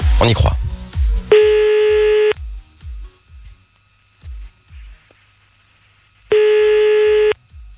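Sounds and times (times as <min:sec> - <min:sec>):
speech: 0:00.2 - 0:00.6
telephone ringback tone on a call back: 0:01.3 - 0:02.4, 0:06.3 - 0:07.4.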